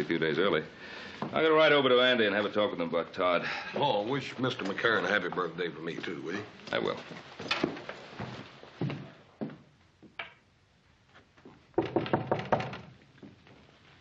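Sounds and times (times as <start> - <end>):
speech: 0.0 - 7.8
knocking on an unlocked wooden door: 11.8 - 12.9.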